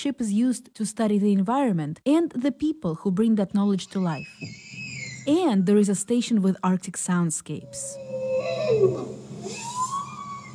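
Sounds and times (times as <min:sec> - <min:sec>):
speech: 0:00.0 - 0:04.6, 0:05.2 - 0:09.6
bowhead whale moans recorded by hydrophones in the Arctic: 0:07.6 - 0:10.5.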